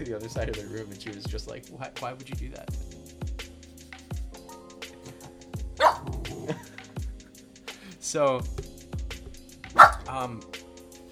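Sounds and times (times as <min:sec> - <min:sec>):
speech: 0:00.0 - 0:03.2, 0:08.1 - 0:08.7, 0:10.1 - 0:10.6
dog barking in short sharp yaps: 0:05.8 - 0:06.6, 0:09.8 - 0:10.1.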